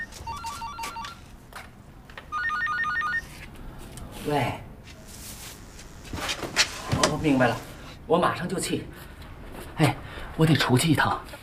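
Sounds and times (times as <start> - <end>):
telephone ringing with a bright electronic ringtone: 0.0 - 1.3, 2.3 - 3.3
speech: 4.2 - 4.7, 7.2 - 9.1, 9.8 - 11.4.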